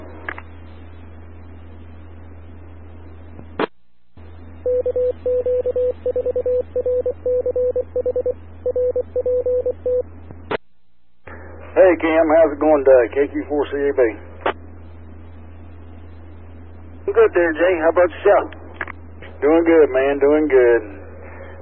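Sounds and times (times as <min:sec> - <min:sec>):
low hum: 0:00.0 - 0:21.6
touch-tone telephone dialing beeps over radio: 0:04.7 - 0:10.0
hissing radio channel: 0:11.2 - 0:15.0, 0:16.1 - 0:21.6
speech: 0:12.0 - 0:14.3, 0:17.3 - 0:18.6, 0:19.4 - 0:20.9.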